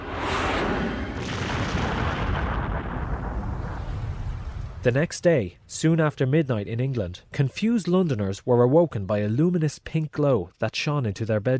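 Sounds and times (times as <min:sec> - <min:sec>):
deafening explosion with roaring blast and rumbling shockwave: 0:00.0 - 0:04.8
speech: 0:04.8 - 0:11.5.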